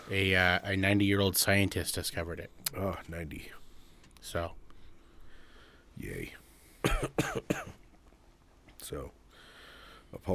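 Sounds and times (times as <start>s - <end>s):
speech: 0.1s - 3.6s, 4.2s - 4.6s, 6.0s - 7.8s, 8.8s - 9.2s, 10.1s - 10.3s
harsh coughs: 6.8s - 7.8s.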